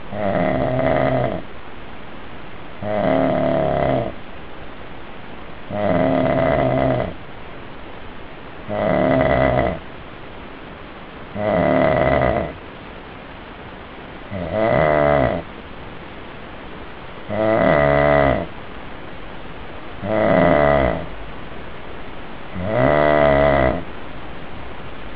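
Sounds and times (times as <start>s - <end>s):
lo-fi snoring: 0.1s - 1.4s, 2.8s - 4.2s, 5.7s - 7.2s, 8.7s - 9.8s, 11.4s - 12.6s, 14.3s - 15.5s, 17.3s - 18.5s, 20.0s - 21.1s, 22.6s - 23.9s.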